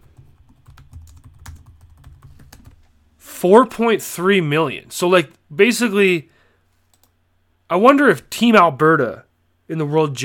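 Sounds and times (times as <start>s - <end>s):
clicking of keys on a computer keyboard: 0.0s - 2.8s, 6.9s - 7.1s
speech: 3.4s - 6.3s, 7.7s - 10.2s.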